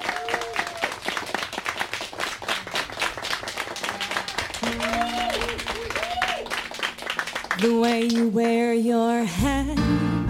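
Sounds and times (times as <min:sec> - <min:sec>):
crowd whoops and cheers: 0:00.0 - 0:01.0, 0:03.6 - 0:06.7
crowd applauding in a room: 0:00.0 - 0:08.7
speech: 0:07.6 - 0:10.2.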